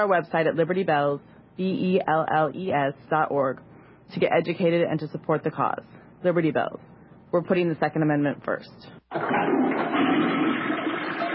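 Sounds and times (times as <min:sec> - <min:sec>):
speech: 0:00.0 - 0:10.4
toilet flushing: 0:09.1 - 0:11.3.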